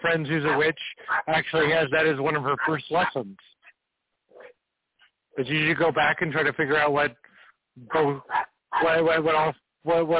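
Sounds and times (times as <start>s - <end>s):
speech: 0.0s - 3.6s, 5.4s - 10.1s
puppy barking: 0.4s - 1.9s, 2.6s - 3.2s, 8.2s - 9.0s.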